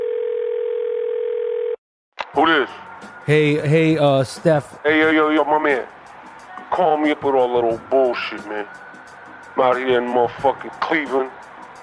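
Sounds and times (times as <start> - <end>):
telephone dial tone on a burner phone: 0.0 - 1.8
speech: 2.4 - 6.0, 6.8 - 8.9, 9.6 - 11.4.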